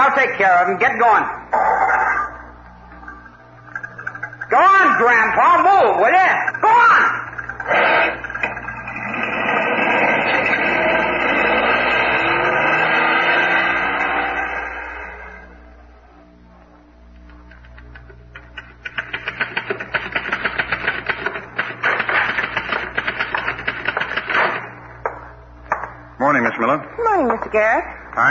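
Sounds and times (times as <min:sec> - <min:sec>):
low steady hum: 0:00.0 - 0:12.6, 0:13.6 - 0:22.0, 0:22.8 - 0:28.2
speech: 0:00.2 - 0:01.9, 0:04.5 - 0:08.2, 0:27.5 - 0:28.2
car engine starting and pulling away: 0:07.4 - 0:15.6
typewriter typing: 0:17.5 - 0:24.6.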